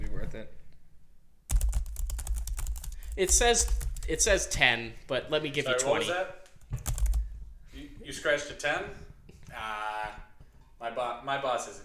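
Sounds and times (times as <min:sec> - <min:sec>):
typing on a small keyboard: 0:01.5 - 0:04.3, 0:06.8 - 0:07.2
speech: 0:03.2 - 0:06.4, 0:08.1 - 0:09.0, 0:10.8 - 0:11.8.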